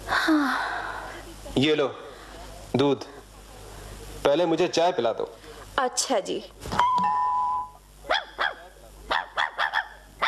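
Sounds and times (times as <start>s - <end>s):
speech: 0.3s - 0.7s, 1.6s - 2.0s, 2.7s - 3.2s, 4.3s - 6.8s
steady high tone: 6.8s - 7.8s
dog barking: 8.1s - 10.2s.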